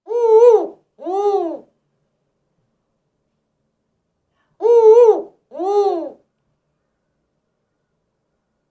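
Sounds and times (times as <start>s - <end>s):
spotted eagle-owl two-note hoot: 0.0s - 1.8s, 4.6s - 6.3s.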